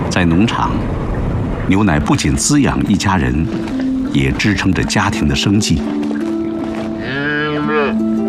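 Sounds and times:
speech: 0:00.2 - 0:01.0, 0:01.7 - 0:06.1
dairy cow mooing on a farm: 0:06.9 - 0:08.1.

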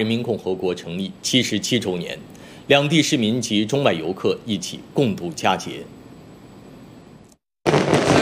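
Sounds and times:
speech: 0:00.0 - 0:06.0
fireworks bursting over a harbour during a national day celebration display: 0:07.6 - 0:08.2.

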